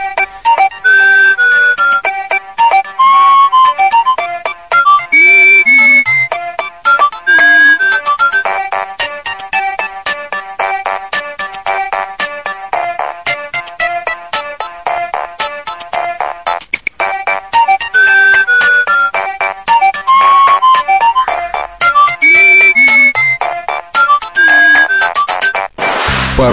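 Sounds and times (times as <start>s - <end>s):
bright electronic standard built-in mobile phone ringtone melody: 0.0s - 25.7s.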